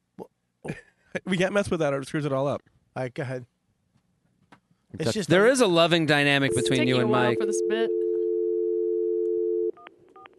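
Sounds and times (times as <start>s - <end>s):
speech: 0.7s - 3.5s, 4.9s - 8.0s
short electronic beeps: 6.5s - 8.0s
telephone dial tone: 6.5s - 10.3s.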